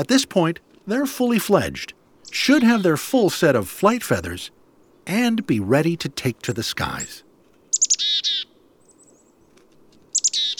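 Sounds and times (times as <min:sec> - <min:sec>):
chickadee calls: 0:00.0 - 0:04.4, 0:05.0 - 0:08.6, 0:10.1 - 0:10.5
speech: 0:00.0 - 0:07.2
faint hush: 0:00.0 - 0:07.6.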